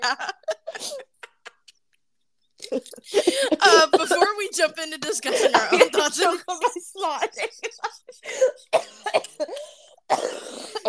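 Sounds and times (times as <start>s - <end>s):
laughter: 0.0s - 1.7s, 2.9s - 8.6s
person coughing: 0.6s - 1.1s, 2.7s - 4.4s, 8.2s - 10.8s
speech: 3.0s - 8.0s.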